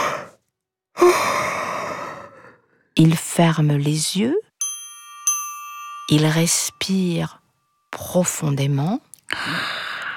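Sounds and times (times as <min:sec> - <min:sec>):
long breathy yawn: 0:00.0 - 0:00.4, 0:01.0 - 0:02.8, 0:09.3 - 0:10.1
speech: 0:03.0 - 0:04.4, 0:06.1 - 0:09.8.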